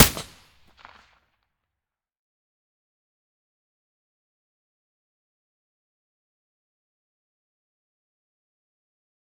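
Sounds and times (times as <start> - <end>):
APS pistol with silencer: 0.0 - 0.9.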